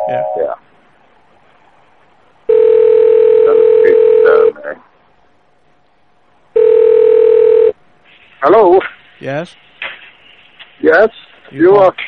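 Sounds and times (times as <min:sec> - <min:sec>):
speech: 0:00.1 - 0:00.6, 0:08.4 - 0:09.7, 0:10.8 - 0:12.0
loud steady telephone ringing tone on a line: 0:02.5 - 0:04.5, 0:06.6 - 0:07.8.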